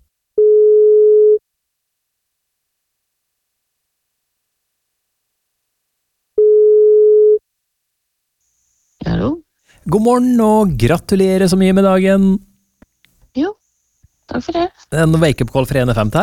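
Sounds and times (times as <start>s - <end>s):
telephone ringback tones during outgoing call: 0.4s - 1.4s, 6.4s - 7.4s
speech: 9.9s - 12.5s, 13.4s - 13.6s, 14.3s - 16.2s.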